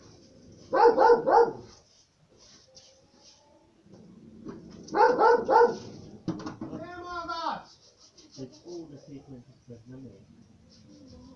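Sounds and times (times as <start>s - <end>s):
faint noise: 0.0s - 11.3s
dog barking: 0.7s - 1.7s, 4.9s - 6.0s.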